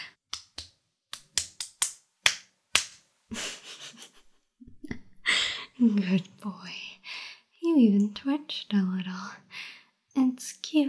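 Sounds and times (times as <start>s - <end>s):
sharp slaps on skin: 0.3s - 3.0s
speech: 5.8s - 6.9s, 7.8s - 9.5s, 10.4s - 10.8s.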